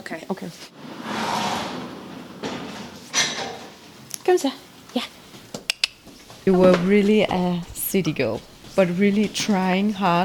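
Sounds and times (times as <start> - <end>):
speech: 0.1 - 1.0, 4.4 - 5.2, 6.4 - 10.2
heavy barn door sliding open with a scraping rumble: 0.9 - 3.6.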